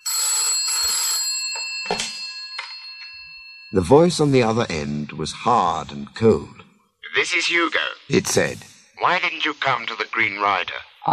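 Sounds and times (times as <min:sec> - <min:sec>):
old-fashioned telephone bell ringing: 0:00.0 - 0:03.9
speech: 0:03.7 - 0:06.6, 0:07.2 - 0:11.1.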